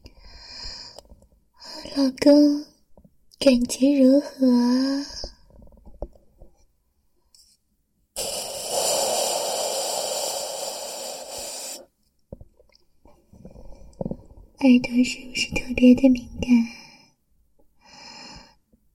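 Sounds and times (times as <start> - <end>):
speech: 2.0 - 2.7, 3.4 - 5.2, 14.6 - 16.8
faint clicks and soft mouth sounds: 8.2 - 11.9
loud hissing breath at the microphone: 8.2 - 11.9, 17.8 - 18.6.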